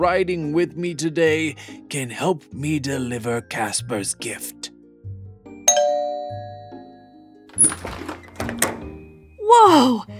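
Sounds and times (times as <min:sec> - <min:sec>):
speech: 0:00.0 - 0:04.7, 0:09.5 - 0:10.1
doorbell two-note ding-dong chime: 0:05.7 - 0:07.3.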